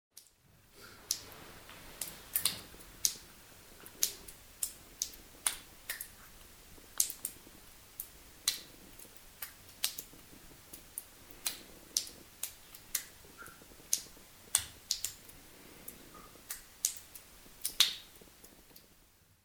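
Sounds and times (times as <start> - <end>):
cave ambience: 0.7 - 18.8.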